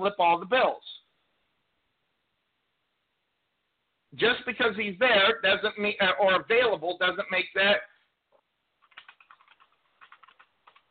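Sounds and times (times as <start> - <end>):
speech: 0.0 - 0.8, 4.2 - 7.9
typing on a computer keyboard: 8.8 - 10.8.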